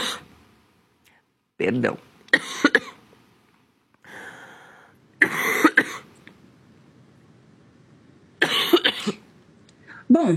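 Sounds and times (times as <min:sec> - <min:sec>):
speech: 0:01.6 - 0:02.7, 0:10.2 - 0:10.3
person coughing in a coughing fit: 0:02.3 - 0:03.0, 0:05.2 - 0:06.1, 0:08.4 - 0:09.2.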